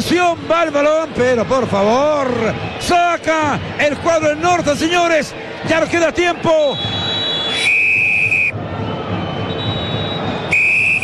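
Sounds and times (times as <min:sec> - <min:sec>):
stadium crowd roar: 0:00.0 - 0:11.0
speech: 0:00.1 - 0:07.0
referee's whistle blast ending the first half of a football match: 0:06.6 - 0:08.6, 0:09.5 - 0:11.0.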